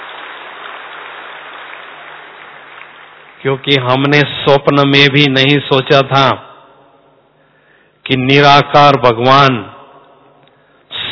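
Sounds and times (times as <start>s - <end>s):
audience at a religious discourse clapping: 0.0s - 3.9s
speech: 3.4s - 6.5s, 8.1s - 9.7s.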